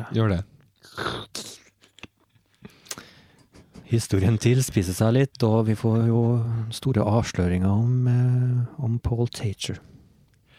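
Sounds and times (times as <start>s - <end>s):
speech: 0.0s - 1.2s, 3.9s - 10.0s
mouth clicks: 0.7s - 3.5s
person sipping water: 0.8s - 3.1s.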